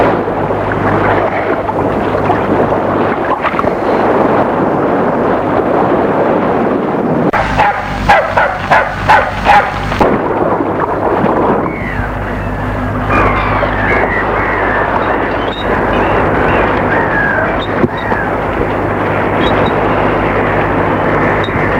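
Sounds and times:
rough sea roaring at Deauville: 0:00.0 - 0:21.7
strong wind at Deauville: 0:00.0 - 0:21.7
big black dog barking: 0:07.4 - 0:09.9.

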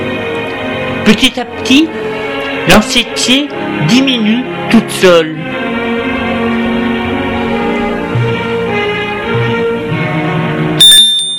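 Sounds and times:
soft music: 0:00.0 - 0:11.3
speech: 0:01.0 - 0:05.6
bright metallic doorbell ringing at a front door: 0:10.8 - 0:11.3.

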